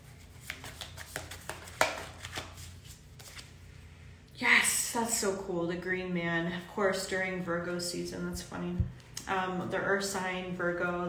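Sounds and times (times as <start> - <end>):
papery taps and shuffles: 0.2 - 3.5
card snapping: 0.5 - 2.5
speech: 5.0 - 11.0.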